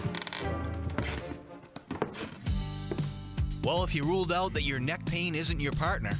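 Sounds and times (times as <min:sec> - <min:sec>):
heavy footsteps thudding up wooden stairs: 0:00.0 - 0:03.2
speech: 0:03.6 - 0:06.1.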